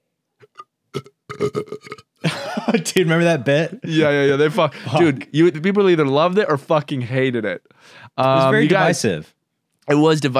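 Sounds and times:
loud gurgling burp: 0.4s - 2.2s
speech: 1.5s - 2.0s, 2.8s - 10.3s
laughter: 2.2s - 5.4s.

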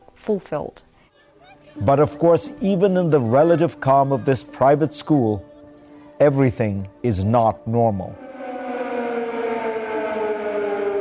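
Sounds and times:
speech: 0.2s - 0.9s, 1.8s - 5.5s, 6.2s - 8.2s
air raid siren wailing: 8.0s - 11.0s.

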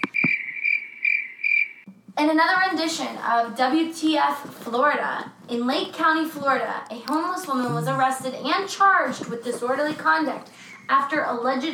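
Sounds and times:
crickets chirping in a shrill trill: 0.0s - 1.9s
speech: 2.2s - 11.7s.

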